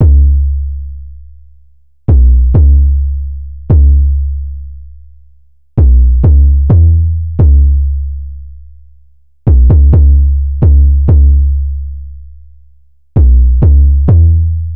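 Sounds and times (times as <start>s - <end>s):
808 loop in C sharp minor: 0.0s - 0.8s, 2.1s - 4.5s, 5.8s - 8.2s, 9.5s - 11.8s, 13.2s - 14.7s.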